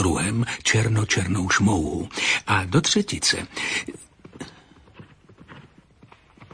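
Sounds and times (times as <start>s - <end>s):
speech: 0.1s - 4.0s
horse galloping with hooves clopping: 2.7s - 6.5s.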